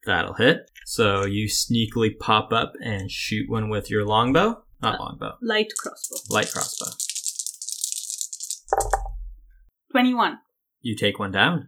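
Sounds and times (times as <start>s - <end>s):
speech: 0.0s - 7.1s, 9.9s - 11.6s
dice rattling and clattering onto a table: 5.7s - 9.1s.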